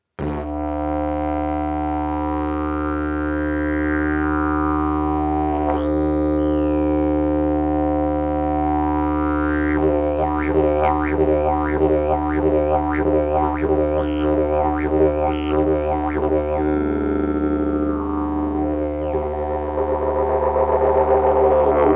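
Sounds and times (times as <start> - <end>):
didgeridoo: 0.2 - 21.9.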